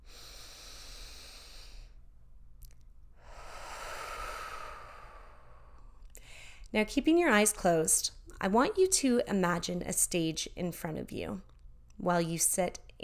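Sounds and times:
deep breath in during a guided relaxation exercise: 0.0s - 2.0s, 3.2s - 6.7s
speech: 6.7s - 13.0s.

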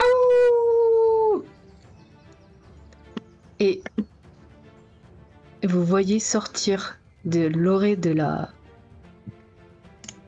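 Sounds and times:
single wolf howling: 0.0s - 1.5s
speech: 3.6s - 4.0s, 5.6s - 8.6s.

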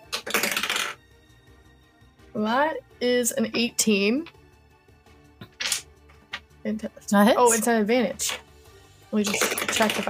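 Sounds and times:
dice rolling on a hard table: 0.0s - 1.0s, 5.4s - 6.4s, 9.3s - 10.0s
speech: 2.3s - 4.4s, 6.7s - 8.4s, 9.1s - 10.0s.

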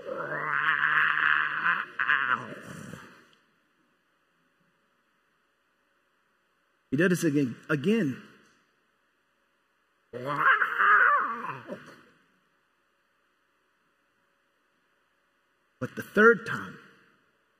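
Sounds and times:
young lion cub's weak little roar when cornered by hyenas: 0.0s - 3.2s, 10.2s - 12.0s
speech: 7.0s - 8.3s, 15.9s - 16.7s.

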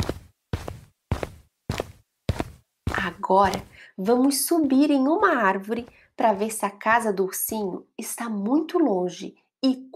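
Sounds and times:
footsteps crunching over rocky ground: 0.0s - 6.8s
speech: 3.0s - 9.9s.

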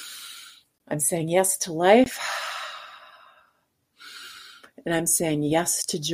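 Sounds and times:
person breathing in deeply during a breathing exercise: 0.0s - 0.7s, 2.2s - 4.7s
speech: 0.9s - 2.4s, 4.8s - 6.1s.

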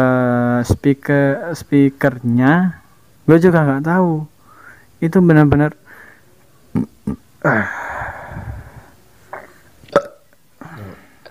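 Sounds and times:
speech: 0.6s - 4.3s, 5.0s - 5.8s, 6.8s - 7.9s
throaty burps: 6.7s - 7.9s, 9.3s - 11.2s.

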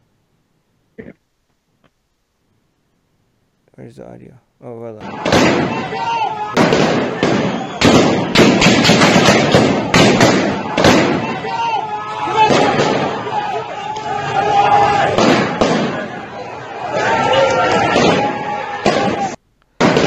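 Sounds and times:
speech: 3.8s - 7.9s
outdoor crowd shouting and talking at a street protest: 5.0s - 19.4s
sharp loud bangs at a street protest: 5.0s - 20.0s.

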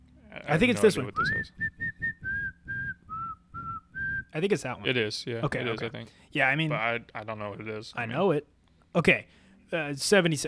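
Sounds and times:
speech: 0.4s - 2.0s, 4.4s - 10.4s
whistled melody from a pop song: 1.2s - 4.3s.

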